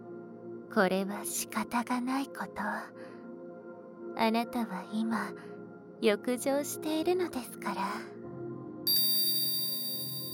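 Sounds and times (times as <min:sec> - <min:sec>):
speech: 0:00.7 - 0:03.1, 0:04.2 - 0:08.2
hypnosis bell ringing: 0:08.9 - 0:10.3.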